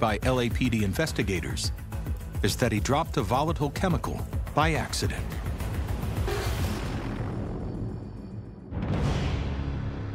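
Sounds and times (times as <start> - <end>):
speech: 0.0 - 5.4
heavy rumbling explosion boom: 6.5 - 10.1.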